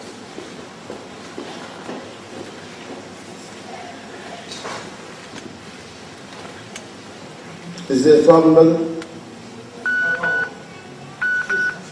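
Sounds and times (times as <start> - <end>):
low murmur: 0.0 - 11.9
speech: 7.9 - 8.9
mobile phone beeping short electronic tones: 9.8 - 10.6, 11.2 - 11.9.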